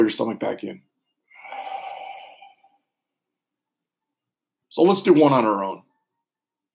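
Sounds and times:
speech: 0.0 - 0.9, 4.7 - 5.9
exhaling through the mouth during a guided breathing exercise: 1.3 - 2.8.

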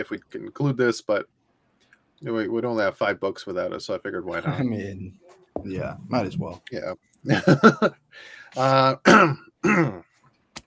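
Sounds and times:
speech: 0.0 - 1.4, 2.2 - 10.0
person clearing a phlegmy throat after strep: 8.8 - 10.1.

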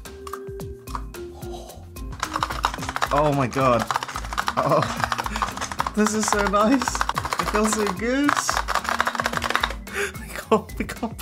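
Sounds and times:
speech: 3.1 - 4.0, 4.6 - 5.2, 6.0 - 8.6, 10.5 - 11.1
chunky giant mechanical keyboard key clicks: 3.9 - 9.8.

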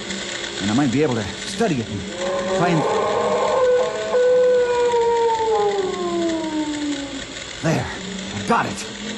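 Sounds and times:
speech: 0.6 - 3.1, 7.6 - 8.9
unknown creature wailing howl: 2.1 - 7.3.

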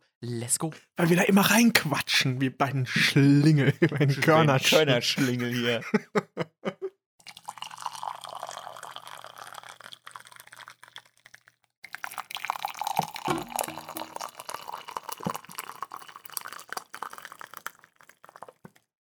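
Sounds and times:
speech: 0.2 - 6.5
laughter: 2.8 - 6.9
small drips and clinks: 7.2 - 18.8
hot tea pouring from a kettle into a cup: 7.2 - 18.9.

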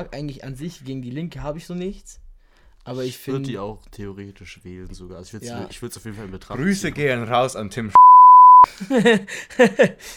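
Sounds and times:
speech: 0.0 - 2.2, 2.8 - 8.0, 8.7 - 10.1
censor bleep over a spoken surname: 8.0 - 8.7.

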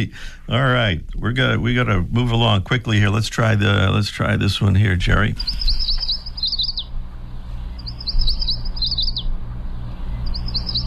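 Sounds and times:
speech: 0.0 - 5.8
steady low rumble of noise: 0.0 - 10.8
yellow warbler singing: 3.1 - 10.8.

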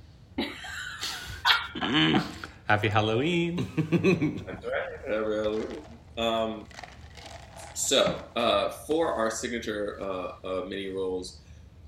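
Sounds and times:
speech: 1.9 - 6.8, 7.9 - 11.4
laughter: 3.6 - 5.8
dog gnawing or snuffling at a bone: 5.0 - 8.4.

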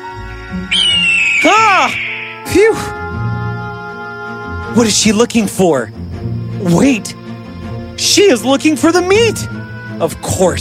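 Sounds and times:
speech: 0.5 - 1.0, 1.8 - 3.0, 4.8 - 7.2, 8.0 - 10.6
bird screaming: 0.6 - 2.8.

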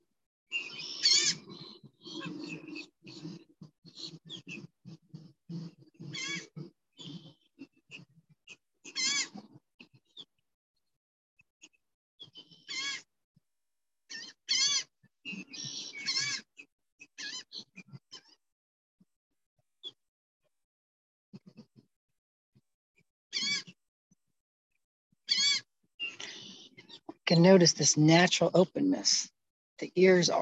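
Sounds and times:
birds calling outdoors: 0.5 - 4.7, 5.5 - 8.0, 14.1 - 16.4, 25.3 - 27.6
speech: 27.3 - 30.4.

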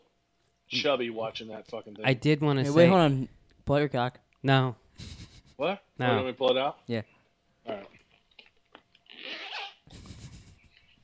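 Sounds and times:
speech: 0.7 - 7.9
trouser zipper being zipped up: 9.1 - 9.8.

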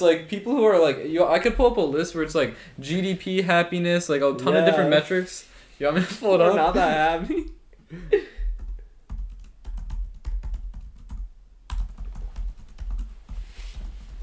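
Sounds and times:
speech: 0.0 - 8.3
typing on a computer keyboard: 8.6 - 13.4.

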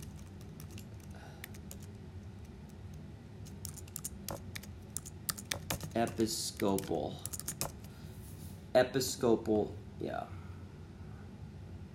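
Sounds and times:
typing on a computer keyboard: 0.0 - 2.0, 3.5 - 7.8
low steady hum: 0.0 - 11.9
speech: 6.0 - 7.4, 8.8 - 10.4.

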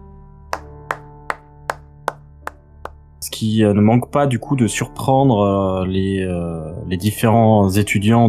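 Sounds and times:
slow handclaps in a room: 0.5 - 3.0
speech: 3.3 - 8.2.

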